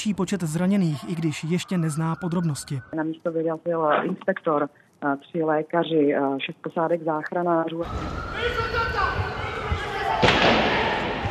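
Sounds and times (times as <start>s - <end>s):
speech: 0.0s - 9.4s
gunshot: 10.2s - 11.2s.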